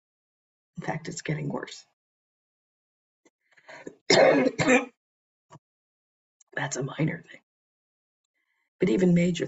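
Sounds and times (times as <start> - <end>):
speech: 0.8 - 1.9, 3.7 - 5.0, 6.6 - 7.4, 8.8 - 9.4
person clearing throat from a tickle in the throat: 3.9 - 4.9.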